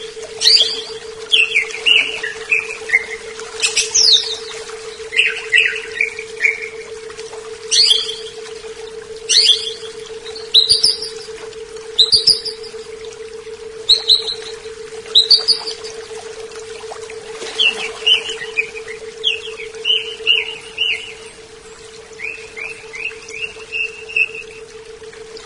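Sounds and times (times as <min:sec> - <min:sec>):
constant background hum: 0:00.0 - 0:25.4
leafbird singing varied phrases: 0:00.4 - 0:06.8, 0:07.7 - 0:08.4, 0:09.3 - 0:11.3, 0:12.0 - 0:12.7, 0:13.8 - 0:16.0, 0:17.5 - 0:24.6.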